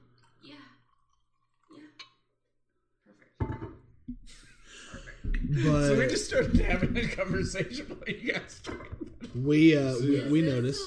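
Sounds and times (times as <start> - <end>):
drink poured against the microphone: 0.0 - 2.3
laughter: 4.3 - 10.8
speech: 5.5 - 10.8.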